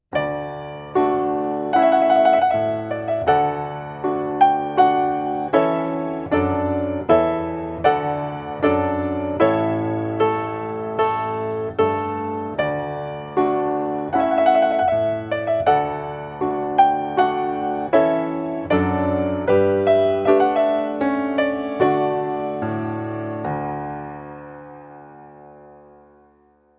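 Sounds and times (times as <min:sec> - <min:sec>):
solo piano piece: 0:00.0 - 0:26.7.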